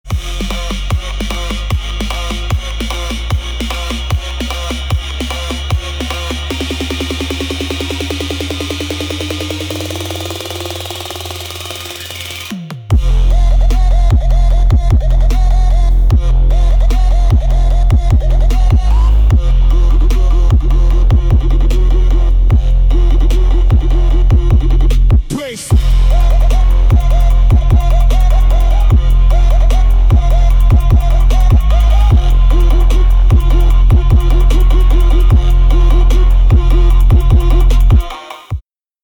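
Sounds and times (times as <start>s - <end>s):
extreme boosted bass: 0.0s - 38.6s.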